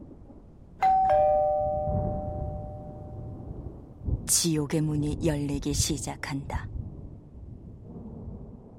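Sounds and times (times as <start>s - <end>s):
low rumble of a thunderstorm: 0.0s - 8.7s
two-tone electronic intercom doorbell chime: 0.8s - 3.3s
speech: 4.3s - 6.8s.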